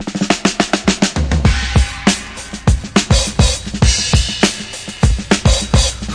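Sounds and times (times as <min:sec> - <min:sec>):
classic break drum loop: 0:00.0 - 0:06.1.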